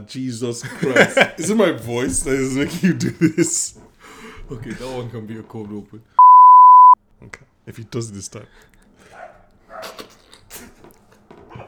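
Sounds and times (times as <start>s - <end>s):
speech: 0.0s - 6.2s, 7.2s - 8.7s
laughter: 0.6s - 5.0s
dog barking in short sharp bursts: 9.1s - 10.0s.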